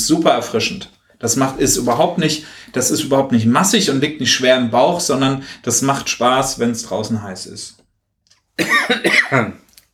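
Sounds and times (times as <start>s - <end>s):
speech: 0.1s - 7.8s, 8.6s - 9.6s
person coughing raspy throaty coughs in a warm office: 8.6s - 9.6s.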